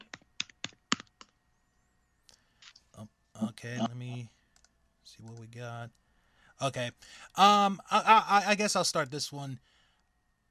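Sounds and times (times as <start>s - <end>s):
typing on a computer keyboard: 0.0s - 1.3s
speech: 3.0s - 4.4s, 5.1s - 6.0s, 6.6s - 9.8s.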